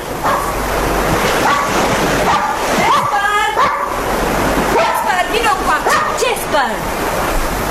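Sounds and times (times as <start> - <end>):
surf and waves of an incoming tide: 0.0 - 7.6
dog barking and yipping by the sea near a breakwater: 0.2 - 0.5, 1.4 - 4.0, 4.7 - 5.2, 5.8 - 6.3
people calling: 2.3 - 4.0, 4.7 - 6.5.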